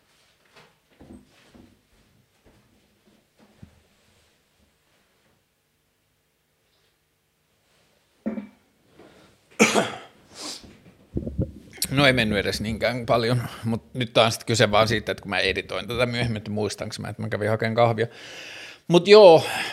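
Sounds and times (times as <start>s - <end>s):
person blowing their nose: 10.3s - 10.7s
speech: 11.9s - 19.7s.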